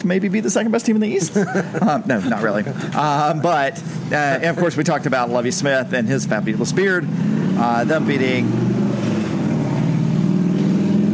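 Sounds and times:
speech: 0.0s - 8.7s
laughter: 1.0s - 4.6s
motorcycle engine revving: 3.8s - 11.1s.

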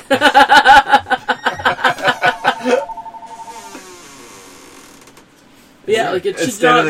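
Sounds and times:
laughter: 0.0s - 3.0s
speech: 0.1s - 0.5s, 6.2s - 6.8s
steady sustained electronic tone: 2.0s - 4.3s
telephone ringing in the room: 2.1s - 3.9s.

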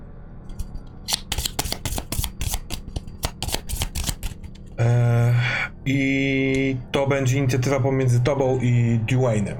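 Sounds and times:
tabletop role-playing game initiative cards being shuffled and drawn: 1.1s - 4.8s
speech: 4.8s - 5.2s, 5.8s - 9.5s.

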